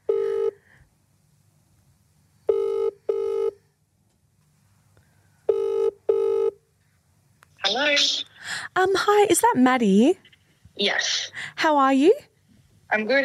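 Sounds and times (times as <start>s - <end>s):
outgoing phone call ringback tone: 0.0s - 0.6s, 2.5s - 3.6s, 5.5s - 6.6s
speech: 7.7s - 12.3s, 12.9s - 13.2s.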